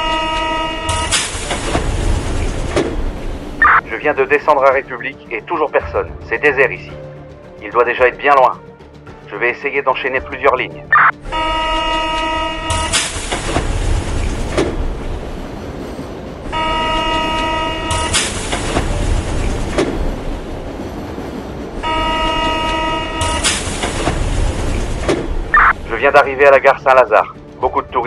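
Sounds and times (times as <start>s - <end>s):
brief tonal horn-like metro signal: 0.0s - 1.7s, 10.9s - 13.7s, 16.5s - 18.8s, 21.8s - 23.8s
metro train rumbling in an underground station: 0.0s - 28.0s
speech: 4.0s - 8.7s, 9.3s - 11.7s, 26.0s - 28.0s.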